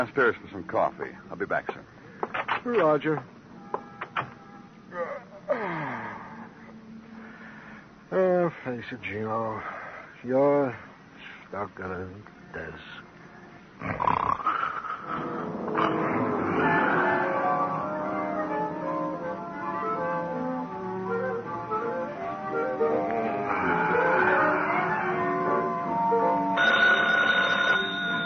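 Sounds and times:
speech: 0:00.0 - 0:03.4, 0:08.1 - 0:10.9, 0:11.5 - 0:13.0
rough tonal sounds: 0:13.8 - 0:28.2
telephone bell ringing: 0:26.2 - 0:28.2.

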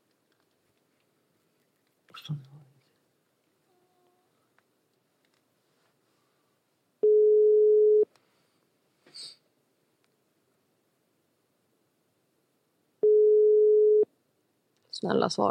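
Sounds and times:
speech: 0:02.2 - 0:02.7, 0:15.0 - 0:15.4
telephone ringback tone while a call is being placed: 0:07.0 - 0:08.1, 0:13.0 - 0:14.1.

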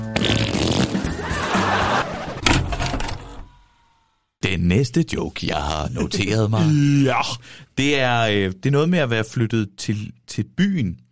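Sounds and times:
person imitating fart noise with their mouth: 0:00.1 - 0:01.3
laughter: 0:01.2 - 0:02.4, 0:05.7 - 0:07.4
speech: 0:04.6 - 0:11.1.

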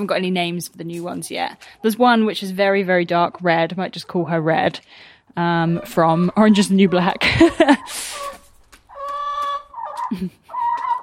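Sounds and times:
speech: 0:00.0 - 0:08.3, 0:10.1 - 0:10.4
hens clucking and squawking in a quarrel: 0:05.4 - 0:11.0.

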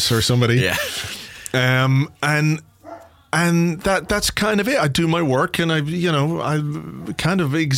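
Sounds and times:
speech: 0:00.1 - 0:02.7, 0:03.3 - 0:07.7
dogs barking at doorbell: 0:02.8 - 0:03.2.

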